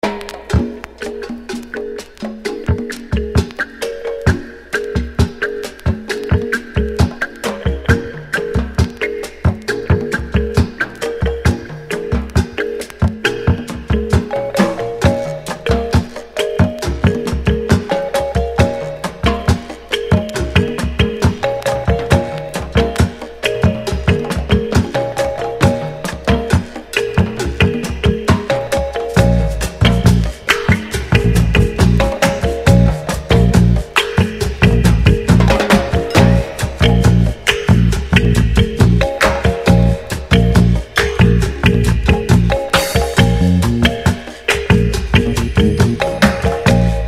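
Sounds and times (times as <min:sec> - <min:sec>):
drum music: 0:00.0 - 0:47.0.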